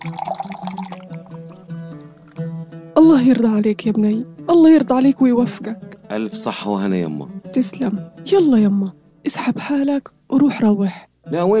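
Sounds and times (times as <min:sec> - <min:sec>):
speech: 0:00.0 - 0:00.8, 0:03.0 - 0:11.5
water poured into a glass: 0:00.0 - 0:01.6.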